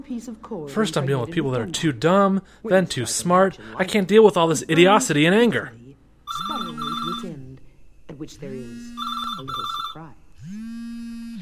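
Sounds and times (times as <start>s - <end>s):
speech: 0.0s - 5.8s, 8.2s - 10.6s
telephone ringing with an electronic trill: 6.3s - 7.5s, 8.4s - 10.7s.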